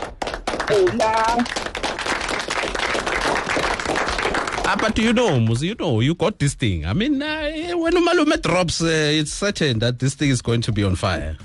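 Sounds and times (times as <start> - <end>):
crowd applauding: 0.0 - 5.6
speech: 0.7 - 1.8, 2.6 - 2.8, 4.7 - 11.4.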